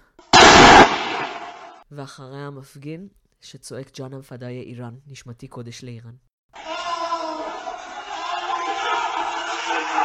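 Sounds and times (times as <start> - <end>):
gunshot: 0.4 - 1.8
speech: 1.9 - 6.3
laughter: 6.6 - 10.0.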